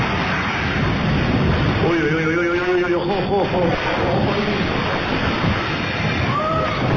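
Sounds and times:
storm waves pounding the shore: 0:00.0 - 0:06.9.

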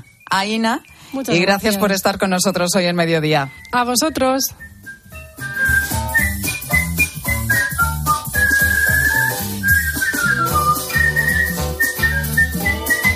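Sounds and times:
person whistling a melody with glides and vibrato: 0:00.0 - 0:01.3, 0:03.5 - 0:13.1
speech: 0:00.4 - 0:04.7
instrumental backing track: 0:03.6 - 0:13.1.

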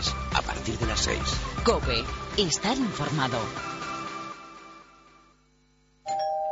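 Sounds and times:
speech: 0:00.0 - 0:03.8
two-tone doorbell chime: 0:06.0 - 0:06.5.

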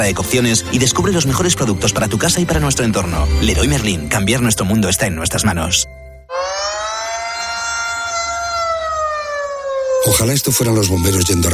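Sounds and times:
speech: 0:00.0 - 0:06.1, 0:10.0 - 0:11.5
air raid warning siren in Ukraine wailing: 0:06.3 - 0:11.5.

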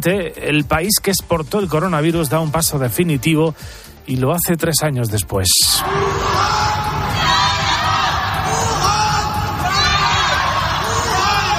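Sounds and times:
speech: 0:00.0 - 0:07.4
citizens shouting from apartment windows: 0:05.7 - 0:11.5.

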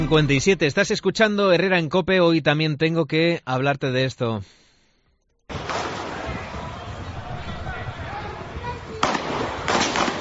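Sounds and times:
speech: 0:00.1 - 0:04.6
police firing gunshots: 0:05.5 - 0:07.0, 0:09.0 - 0:10.1
voices and commotion: 0:05.5 - 0:10.1.

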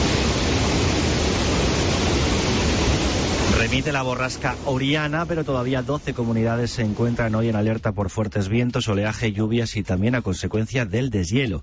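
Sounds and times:
flowing river water rushing: 0:00.0 - 0:07.7
speech: 0:03.7 - 0:11.6.

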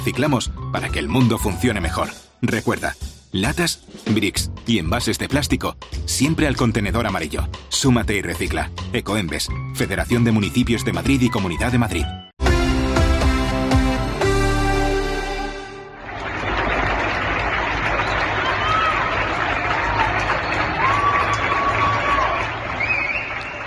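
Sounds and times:
speech: 0:00.0 - 0:12.2
music: 0:00.0 - 0:23.6
many people on balconies in Spain applauding health workers: 0:15.7 - 0:23.6
whistles: 0:17.8 - 0:19.2, 0:20.2 - 0:23.6.

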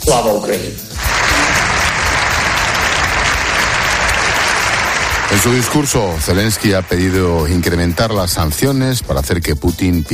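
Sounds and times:
speech: 0:00.0 - 0:01.1, 0:05.3 - 0:10.1
large crowd applauding in a big parliament hall: 0:01.0 - 0:09.0.

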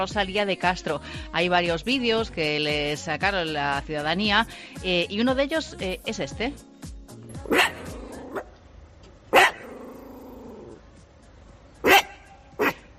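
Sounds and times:
speech: 0:00.0 - 0:06.7, 0:07.5 - 0:07.7
dog growling at wild boars in the streets: 0:07.4 - 0:08.5, 0:09.4 - 0:10.8
dog barking at wild boars in the streets: 0:07.5 - 0:08.5, 0:09.3 - 0:10.0, 0:11.8 - 0:12.9.

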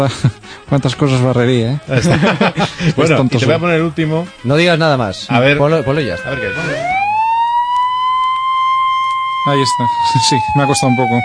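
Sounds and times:
speech: 0:00.0 - 0:07.0, 0:09.4 - 0:11.2
laughter: 0:01.9 - 0:03.1
ambulance siren wailing: 0:05.3 - 0:11.2.

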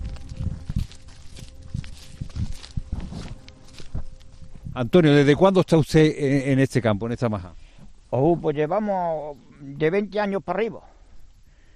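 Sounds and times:
footsteps crunching and scuffing on a rocky country path with fallen stones: 0:00.0 - 0:04.8
speech: 0:04.8 - 0:10.9.

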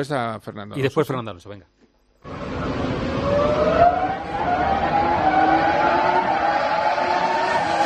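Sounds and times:
speech: 0:00.0 - 0:01.8
R25 racing car engine whining: 0:02.2 - 0:07.8.

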